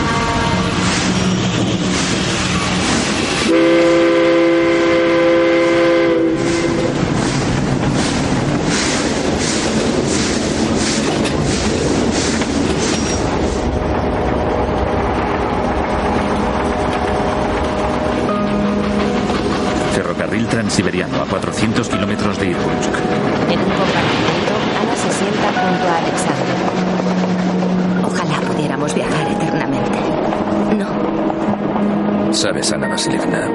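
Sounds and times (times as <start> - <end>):
train whistle: 0.0 - 1.4, 3.4 - 7.0
train wheels clickety-clack on the rails: 0.0 - 32.8
speech: 20.8 - 27.6, 28.6 - 30.9, 32.3 - 33.5.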